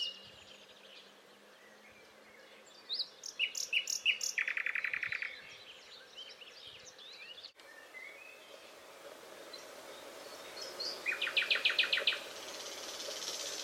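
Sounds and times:
common nightingale Luscinia megarhynchos singing: 0.0 - 13.6.

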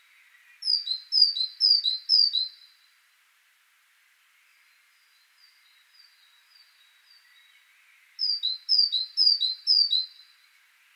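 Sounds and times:
faint hiss: 0.0 - 10.9
great tit Parus major singing two-note phrases: 0.2 - 2.7, 4.6 - 10.3.

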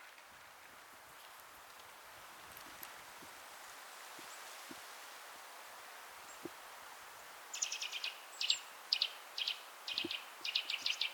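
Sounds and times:
low steady background hiss: 0.0 - 11.1
Eurasian nuthatch Sitta europaea calling: 7.5 - 11.1.

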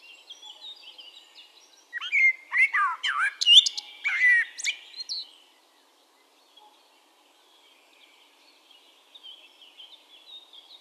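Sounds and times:
Eurasian blackbird Turdus merula warbling whistles and chirps: 0.2 - 5.3.

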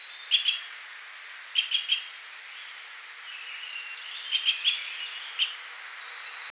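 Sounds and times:
Eurasian wren Troglodytes troglodytes uttering sharp high tick notes: 0.2 - 0.7, 1.5 - 2.2, 4.2 - 5.7.

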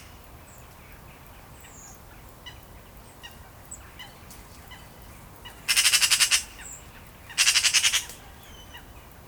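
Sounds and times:
Eurasian magpie rattling chatter: 5.7 - 6.6, 7.4 - 8.2.

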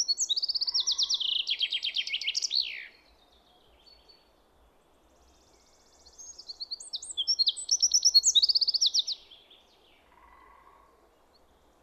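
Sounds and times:
common chaffinch Fringilla coelebs singing: 0.0 - 3.1, 5.3 - 10.1.

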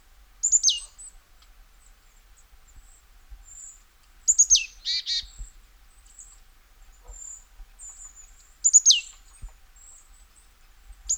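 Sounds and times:
Poecile palustris calling: 0.4 - 0.9, 4.3 - 5.4, 7.2 - 9.2.

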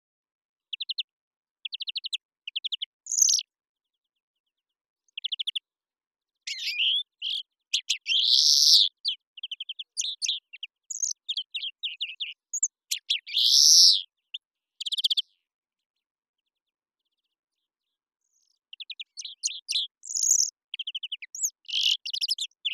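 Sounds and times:
European greenfinch Chloris chloris twittering trills and buzzy wheezes: 1.7 - 3.4, 5.1 - 5.6, 6.4 - 15.4, 16.5 - 22.7.

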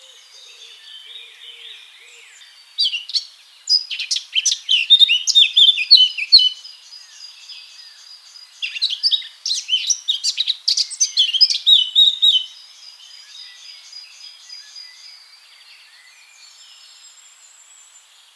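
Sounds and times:
Eurasian blackcap Sylvia atricapilla warbling song: 2.8 - 6.7, 8.5 - 12.6.

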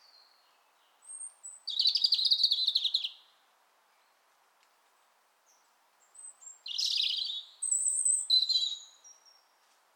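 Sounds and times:
European robin Erithacus rubecula singing: 0.0 - 3.2, 6.2 - 9.4.

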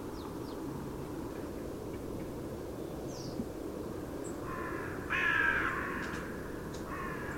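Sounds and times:
low background noise: 0.0 - 7.3
carrion crow Corvus corone giving rasping caws: 4.4 - 7.3.

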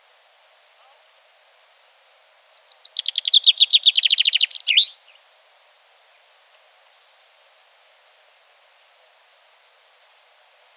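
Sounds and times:
common chaffinch Fringilla coelebs song: 2.5 - 5.2.

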